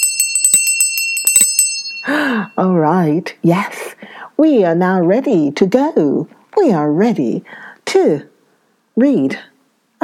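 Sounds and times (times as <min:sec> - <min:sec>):
small hand bell ringing: 0:00.0 - 0:02.6
speech: 0:02.1 - 0:08.3, 0:09.0 - 0:10.0.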